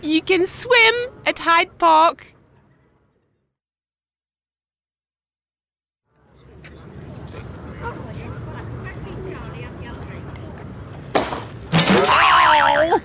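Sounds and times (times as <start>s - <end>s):
speech: 0.0s - 2.4s
steady murmur of outdoor noise: 0.0s - 3.3s, 6.2s - 13.0s
cricket ball smashing into something: 11.1s - 12.5s
wobbling cartoonish wail: 11.8s - 13.0s.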